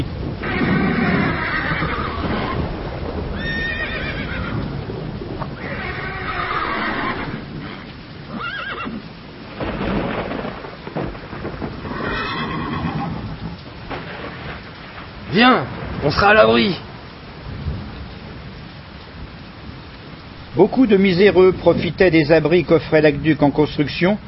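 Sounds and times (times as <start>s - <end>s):
rain: 0.0s - 24.2s
wind: 0.0s - 24.2s
horses neighing and whinnying at a muddy aqueduct construction site: 0.4s - 9.2s, 11.8s - 13.7s
speech: 15.4s - 16.8s, 20.6s - 24.2s.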